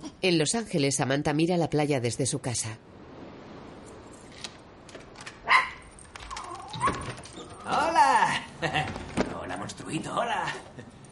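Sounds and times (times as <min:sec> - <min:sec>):
speech: 0:00.2 - 0:03.0
small scattered noises: 0:03.8 - 0:11.0
dog barking: 0:05.4 - 0:05.9
laughter: 0:08.4 - 0:09.1.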